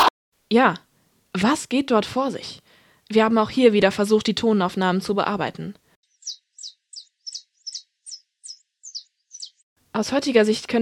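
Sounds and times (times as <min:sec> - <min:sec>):
speech: 0:00.5 - 0:06.4, 0:10.0 - 0:10.7
bird chirping in bright high-pitched notes: 0:06.0 - 0:09.6.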